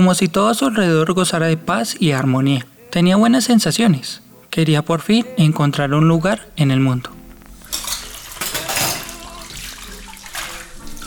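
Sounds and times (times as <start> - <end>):
speech: 0.0 - 7.2
running water in a sink: 0.0 - 11.0
cutlery and dishes clattering in a sink as a spoon is washed: 7.6 - 11.0.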